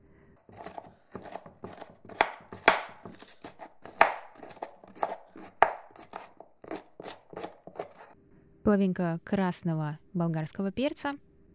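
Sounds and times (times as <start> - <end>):
knife chopping crisp cabbage into thin strips on a cutting board: 0.4 - 8.2
speech: 8.7 - 11.3.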